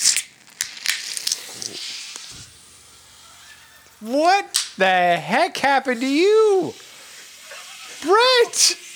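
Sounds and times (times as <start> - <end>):
beer can cracking open: 0.0 - 8.9
beer foaming and fizzing over from a can: 0.0 - 8.9
speech: 4.0 - 6.8, 8.0 - 8.8.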